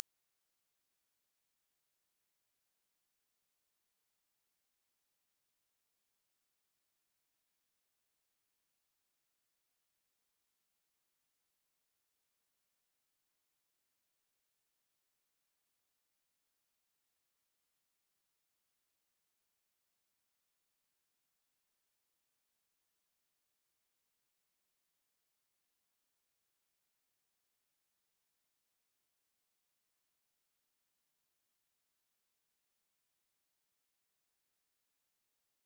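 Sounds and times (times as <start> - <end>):
stereo test signal 11.025 kHz modulated at 229.6875 Hz: 0.0 - 35.6.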